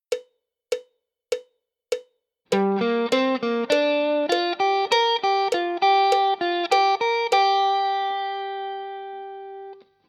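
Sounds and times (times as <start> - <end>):
guitar lick in G minor pentatonic: 2.5 - 9.9.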